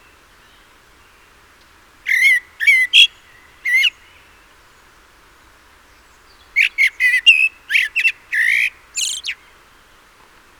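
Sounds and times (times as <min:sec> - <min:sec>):
common blackbird Turdus merula giving harsh chattering calls: 0:02.1 - 0:03.1, 0:06.6 - 0:09.4.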